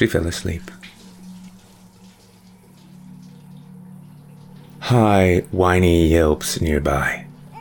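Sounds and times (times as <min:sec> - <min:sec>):
speech: 0:00.0 - 0:00.8, 0:04.9 - 0:07.2
shower water spraying: 0:00.0 - 0:05.0
low hum: 0:00.0 - 0:07.5.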